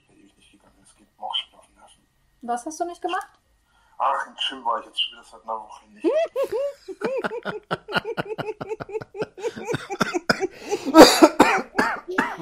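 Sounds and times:
speech: 2.4 - 3.4, 4.0 - 11.4
laughter: 6.0 - 11.3
man coughing after choking: 7.1 - 12.4.

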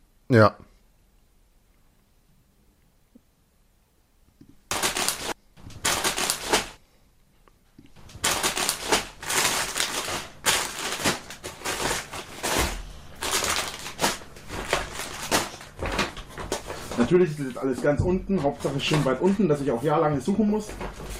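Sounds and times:
speech: 0.3 - 0.6, 17.1 - 21.1
plastic bags rustling during rummaging: 4.7 - 6.8, 8.0 - 21.1.

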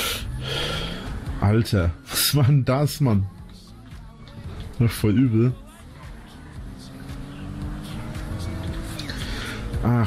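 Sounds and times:
car engine humming: 0.0 - 10.0
speech: 1.4 - 3.4, 4.8 - 5.6, 9.8 - 10.0.

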